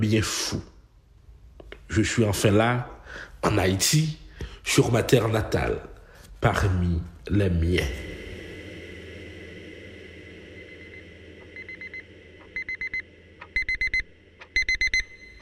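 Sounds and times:
speech: 0.0s - 0.7s, 1.9s - 8.1s
steady hum: 0.0s - 15.4s
alarm clock beeping: 10.5s - 15.4s.

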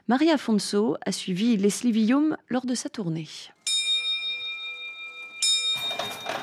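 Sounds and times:
speech: 0.1s - 3.6s
clock bell ringing with a lingering metallic tone: 3.6s - 6.4s.

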